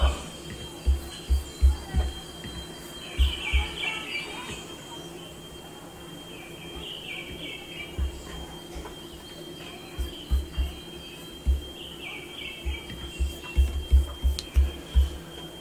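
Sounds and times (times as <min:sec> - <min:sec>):
birds chirping: 0:00.0 - 0:15.5
dull low thumps: 0:00.5 - 0:03.7, 0:10.0 - 0:11.8, 0:12.6 - 0:15.5.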